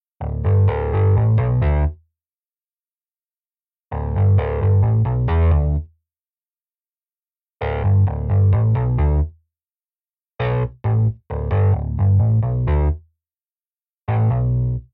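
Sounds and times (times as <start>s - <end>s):
mixed bass: 0.2s - 2.0s, 3.9s - 5.9s, 7.6s - 9.4s, 10.4s - 13.0s, 14.1s - 14.9s.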